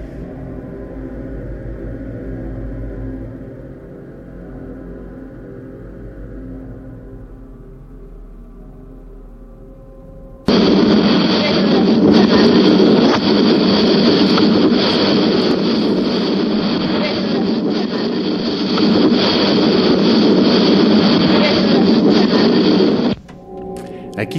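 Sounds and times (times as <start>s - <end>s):
low droning hum: 0.0s - 24.3s
dense broadband static hissing: 10.4s - 24.3s.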